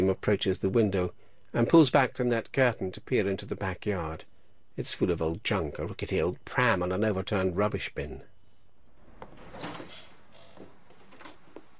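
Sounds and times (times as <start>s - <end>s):
low hiss: 0.0s - 11.7s
speech: 0.1s - 8.3s
bedroom door opening quietly with soft clicks: 9.1s - 11.6s.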